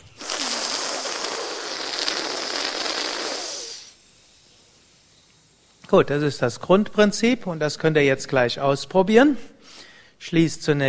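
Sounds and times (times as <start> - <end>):
hissing inhale through a tongue rolled crosswise, a breathing technique: 0.0 - 5.8, 9.6 - 10.2
speech: 5.9 - 9.6, 10.2 - 10.8.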